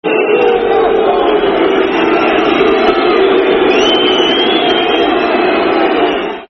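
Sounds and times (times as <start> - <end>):
football crowd booing chant: 0.0 - 6.4.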